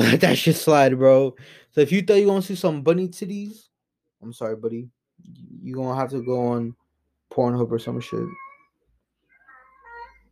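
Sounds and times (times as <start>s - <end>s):
speech: 0.1s - 8.4s
cat meowing in a drawn-out wavering cry: 7.8s - 10.3s.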